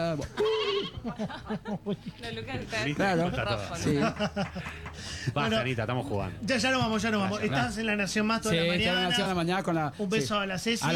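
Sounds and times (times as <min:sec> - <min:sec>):
speech: 0:00.1 - 0:10.9
laughter: 0:00.2 - 0:06.4
human voice imitating a sheep bleating: 0:00.3 - 0:01.0.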